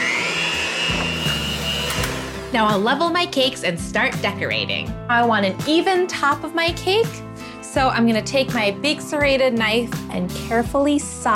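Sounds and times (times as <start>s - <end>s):
electric mixer whirring through cake batter: 0.0s - 3.5s
speech: 2.5s - 11.3s.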